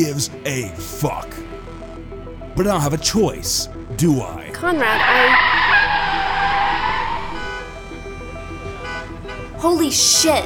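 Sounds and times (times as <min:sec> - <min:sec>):
speech: 0:00.0 - 0:01.4, 0:02.6 - 0:05.6, 0:09.6 - 0:10.4
car tires screeching in a long skid in traffic: 0:04.6 - 0:10.4.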